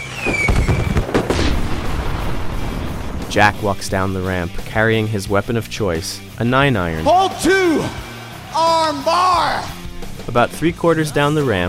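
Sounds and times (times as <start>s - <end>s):
thin whistling tone sliding downward: 0.0s - 1.0s
loud pyrotechnic blasts: 0.0s - 5.6s
thick rumbling roar: 1.4s - 5.1s
speech: 3.3s - 11.6s.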